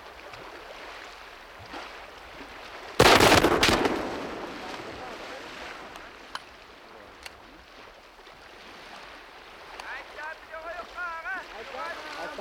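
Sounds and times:
steady outdoor noise: 0:00.0 - 0:12.3
old World War II rifle shots fired at a whale: 0:03.0 - 0:05.0.

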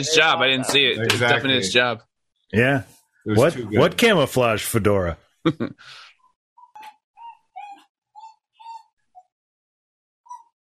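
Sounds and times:
speech: 0:00.0 - 0:06.0
puppy whining in short high-pitched whimpers: 0:06.6 - 0:09.3.

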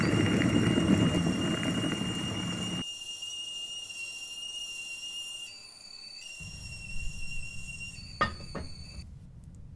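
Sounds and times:
low rumble of boiling water: 0:00.0 - 0:02.8
kettle whistling as water boils: 0:00.0 - 0:09.0.

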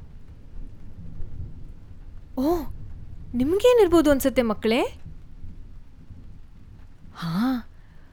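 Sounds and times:
thunder rumbling: 0:00.0 - 0:08.1
rain hissing: 0:01.6 - 0:08.1
speech: 0:03.3 - 0:05.0.

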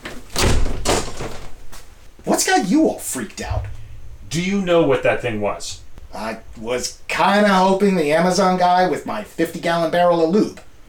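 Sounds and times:
door slamming shut: 0:00.3 - 0:01.5, 0:03.4 - 0:07.4
speech: 0:02.4 - 0:10.8.

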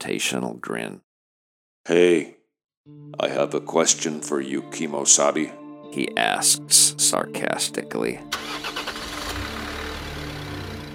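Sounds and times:
speech: 0:00.0 - 0:01.1, 0:01.8 - 0:08.8
car engine cranking, starting and idling: 0:08.3 - 0:10.9.

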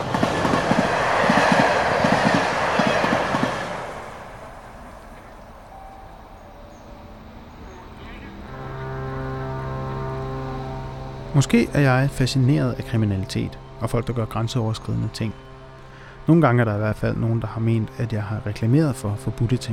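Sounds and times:
train rolling over the rails with clickety-clack: 0:00.0 - 0:06.4
droning tonal whine: 0:04.2 - 0:19.7
speech: 0:11.4 - 0:15.4, 0:16.2 - 0:19.7.

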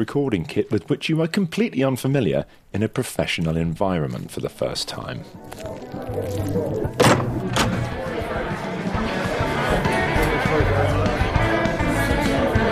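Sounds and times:
speech: 0:00.0 - 0:07.6
crowd chatter and murmuring voices: 0:05.2 - 0:12.7
heavy shipping container door opening with metallic clunks: 0:07.0 - 0:08.0.

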